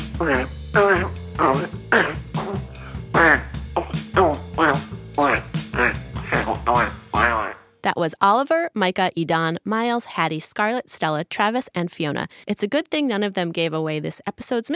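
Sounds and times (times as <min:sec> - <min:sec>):
voice imitating a Parasaurolophus dinosaur fart: 0:00.0 - 0:07.6
speech: 0:00.2 - 0:01.8, 0:08.2 - 0:14.7.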